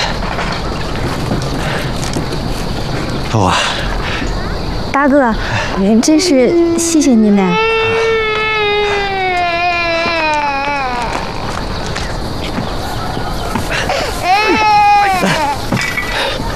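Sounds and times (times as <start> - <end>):
noise: 0.0 - 16.5
speech: 3.4 - 3.8, 5.0 - 7.7
baby crying in a wailing bout: 6.5 - 11.6, 13.9 - 15.8.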